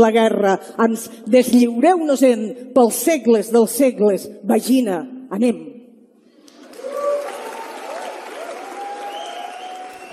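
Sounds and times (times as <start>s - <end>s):
speech: 0.0s - 5.7s
crowd applauding after a poem reading: 6.4s - 10.1s
faint cheers or voices: 6.6s - 10.1s.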